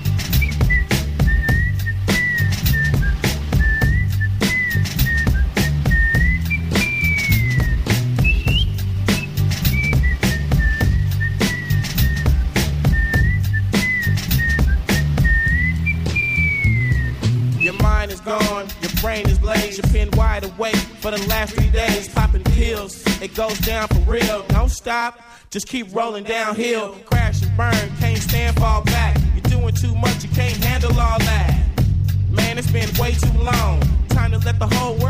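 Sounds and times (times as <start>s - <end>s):
high piercing whistle playing a wavering melody: 0.0s - 19.1s
loud thumping beat with heavy bass: 0.0s - 24.8s, 27.1s - 35.0s
speech: 20.4s - 31.7s, 32.3s - 35.0s.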